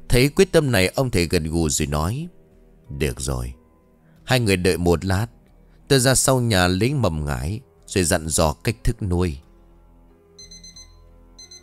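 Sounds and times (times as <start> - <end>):
speech: 0.1 - 3.6, 4.3 - 9.5
phone alarm ringing at midnight with high-pitched electronic beeps: 10.4 - 11.6.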